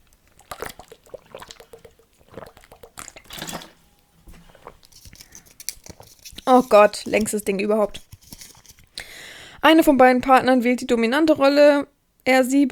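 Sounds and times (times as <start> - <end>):
person taking a sip of water: 0.0 - 9.2
small slurps and swallows with soft clicks and gulps: 0.1 - 3.3, 4.3 - 7.4
speech: 6.5 - 8.0, 9.7 - 12.6.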